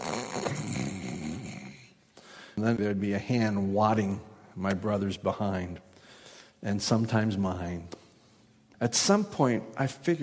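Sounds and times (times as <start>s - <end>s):
boy pretending to be asleep imitating snoring: 0.0s - 1.9s
speech: 2.6s - 5.9s, 6.6s - 8.0s, 8.8s - 10.2s.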